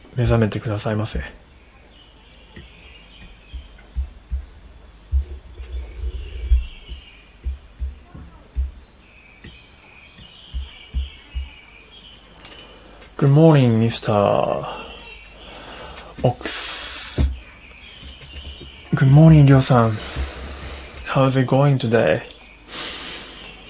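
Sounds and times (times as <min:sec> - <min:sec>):
birds singing: 0:00.0 - 0:23.6
speech: 0:00.2 - 0:01.4, 0:13.4 - 0:14.8, 0:16.2 - 0:16.7, 0:19.0 - 0:20.2, 0:21.2 - 0:22.3
low irregular thumping: 0:03.2 - 0:09.6, 0:10.2 - 0:11.6.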